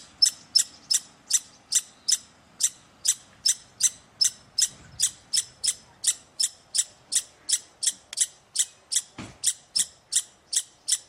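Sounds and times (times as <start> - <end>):
squirrel giving rapid sharp chips: 0.0 - 11.0.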